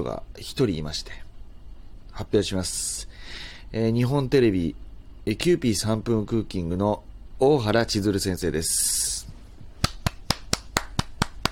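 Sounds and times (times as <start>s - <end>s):
speech: 0.0s - 1.3s, 2.2s - 9.3s
audience clapping: 9.8s - 11.5s.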